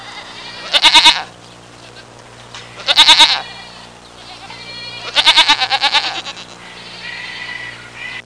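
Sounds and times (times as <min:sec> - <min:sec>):
old farm goat bleating: 0:00.0 - 0:08.2.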